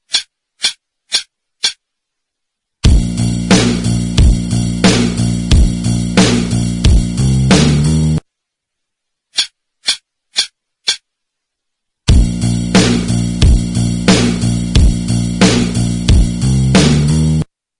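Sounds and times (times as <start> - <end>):
rock and roll backing track intro: 2.8 - 8.2, 12.1 - 17.4.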